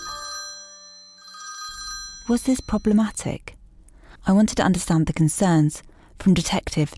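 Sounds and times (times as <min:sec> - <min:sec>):
hotline telephone ringing with electronic bell: 0:00.0 - 0:03.2
speech: 0:02.3 - 0:03.6, 0:04.2 - 0:06.9.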